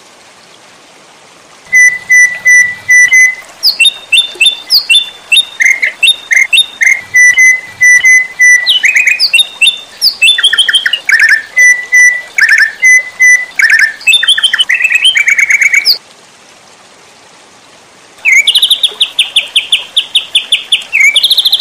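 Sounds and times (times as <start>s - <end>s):
White-rumped shama song with whistled notes and rising and falling chirps: 1.7s - 16.0s, 18.2s - 21.5s.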